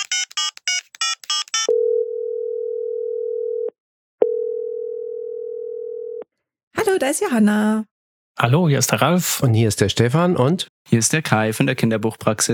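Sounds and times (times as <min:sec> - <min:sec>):
telephone keypad tones: 0:00.0 - 0:02.0
phone ringing tone while placing a call: 0:00.0 - 0:06.2
speech: 0:07.0 - 0:12.5.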